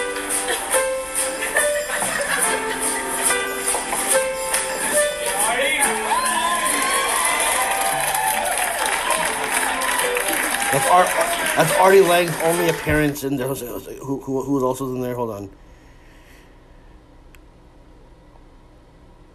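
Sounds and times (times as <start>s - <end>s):
laughter: 0.1s - 3.9s, 8.8s - 12.9s
audience yelling and cheering: 5.1s - 13.2s
dense crowd roar: 5.3s - 12.9s
speech: 10.9s - 15.6s.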